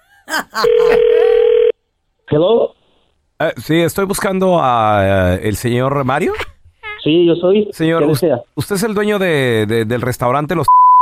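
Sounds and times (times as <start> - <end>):
speech: 0.3 - 1.2, 2.3 - 2.7, 3.4 - 10.8
telephone ringing tone while dialing a call: 0.6 - 1.7.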